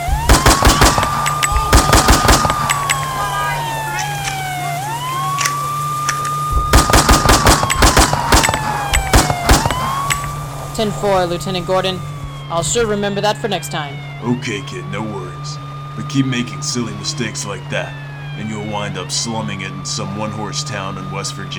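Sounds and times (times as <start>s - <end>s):
guns firing into the air: 0.0s - 4.6s, 5.3s - 10.6s
police siren wailing: 0.0s - 21.5s
speech: 10.8s - 21.5s.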